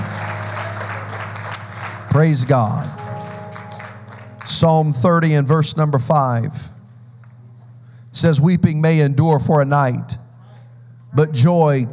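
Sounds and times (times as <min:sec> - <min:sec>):
crowd applauding: 0:00.0 - 0:05.1
speech: 0:02.1 - 0:03.0, 0:04.6 - 0:06.7, 0:08.2 - 0:10.2, 0:11.1 - 0:11.9.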